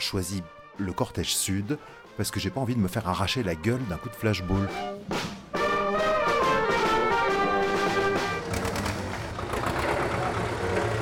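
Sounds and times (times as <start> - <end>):
speech: 0.1 - 5.3
convoy of farmers' tractors engines running at the port of La Pallice: 4.4 - 11.0.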